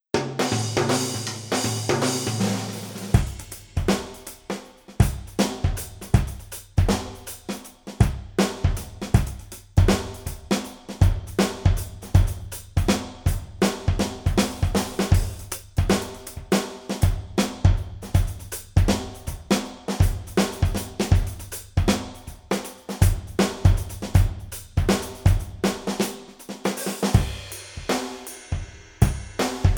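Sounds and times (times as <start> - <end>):
dancehall drums: 0.1 - 29.7.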